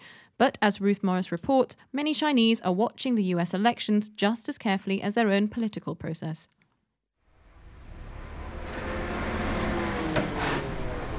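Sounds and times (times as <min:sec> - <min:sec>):
speech: 0:00.4 - 0:06.6
street traffic rumble outside the US consulate in Shanghai: 0:07.3 - 0:11.1
vehicle passing whoosh: 0:07.3 - 0:11.1.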